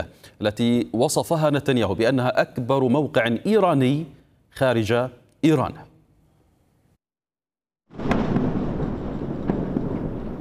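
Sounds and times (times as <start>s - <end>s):
speech: 0.0s - 5.9s
Israeli army explosion targeting a tunnel network in southern Lebanon: 7.9s - 10.3s
crackling debris: 7.9s - 10.3s.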